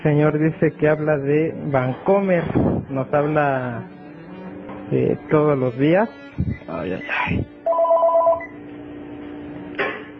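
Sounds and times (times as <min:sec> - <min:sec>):
speech: 0:00.0 - 0:04.0, 0:04.9 - 0:07.6
telephone ringing with a repeated incoming call: 0:07.7 - 0:08.6.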